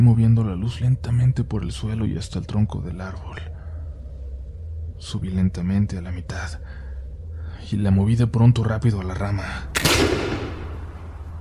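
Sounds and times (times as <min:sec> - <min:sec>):
low rumble: 0:00.0 - 0:11.3
speech: 0:00.1 - 0:03.5, 0:05.0 - 0:06.8, 0:07.6 - 0:10.3
gunshot with long decay: 0:09.8 - 0:11.0.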